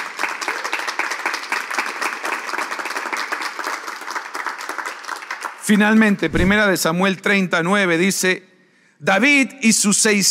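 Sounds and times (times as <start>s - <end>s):
audience applauding: 0.0s - 6.4s
speech: 5.7s - 10.3s.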